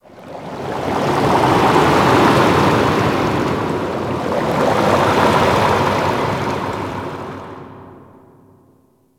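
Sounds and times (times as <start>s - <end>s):
deep sea ocean bubbles: 0.0s - 7.8s.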